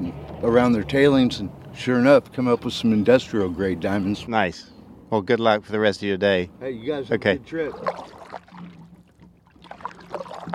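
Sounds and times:
speech: 0:00.4 - 0:08.2
canoe paddle strokes splashing on open water: 0:07.6 - 0:10.5
low steady hum: 0:07.6 - 0:10.5.

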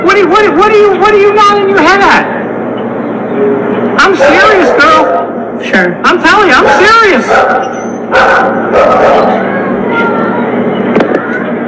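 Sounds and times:
noisy outdoor background: 0:00.0 - 0:11.6
speech: 0:00.2 - 0:02.4, 0:03.4 - 0:10.1
dog barking and yipping: 0:04.0 - 0:05.3, 0:06.5 - 0:09.5.

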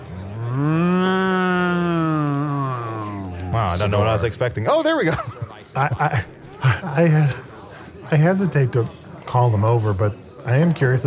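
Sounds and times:
cow mooing: 0:00.0 - 0:03.5
laughter: 0:00.1 - 0:04.2, 0:04.9 - 0:08.3
speech: 0:03.7 - 0:07.4, 0:08.1 - 0:11.0.

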